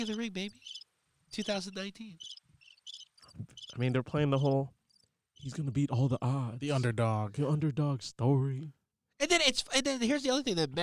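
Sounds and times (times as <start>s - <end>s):
speech: 0.0s - 2.4s, 3.4s - 4.8s, 5.4s - 10.8s
crickets chirping sound effect: 0.0s - 6.2s.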